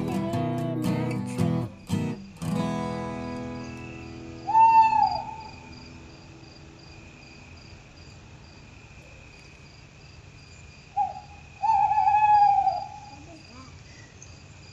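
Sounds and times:
crickets chirping: 0:00.0 - 0:14.7
owl hooting: 0:03.9 - 0:05.9, 0:11.0 - 0:13.3.

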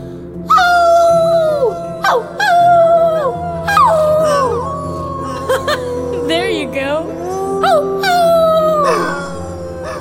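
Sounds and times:
person imitating a dog's howl: 0:00.5 - 0:09.9.

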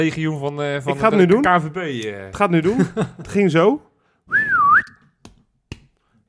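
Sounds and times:
speech: 0:00.0 - 0:04.5
laughter: 0:02.5 - 0:03.8
whistled stadium chant phrase: 0:04.3 - 0:05.0.

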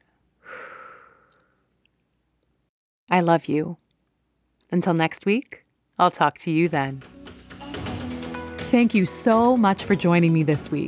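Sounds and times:
deep exhale during breathing exercise: 0:00.4 - 0:01.7
speech: 0:03.1 - 0:03.8, 0:04.7 - 0:07.1, 0:08.7 - 0:10.8.

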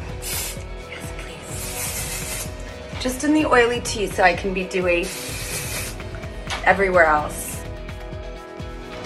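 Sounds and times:
aerosol spray can releasing a fine mist of powder: 0:00.0 - 0:02.8, 0:04.7 - 0:06.2
speech: 0:03.0 - 0:05.2, 0:06.7 - 0:07.4.

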